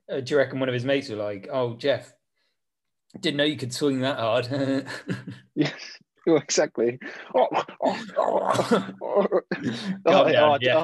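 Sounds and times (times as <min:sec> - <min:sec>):
speech: 0:00.1 - 0:02.2, 0:03.1 - 0:10.8
man clearing his throat: 0:07.7 - 0:10.1.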